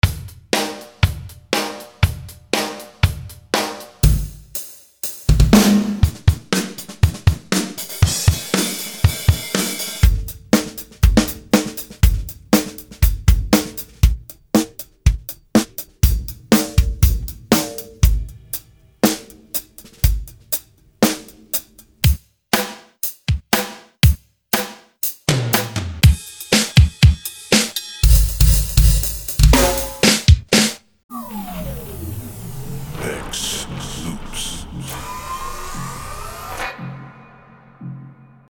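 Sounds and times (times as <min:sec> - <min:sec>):
rock drums: 0:00.0 - 0:30.8.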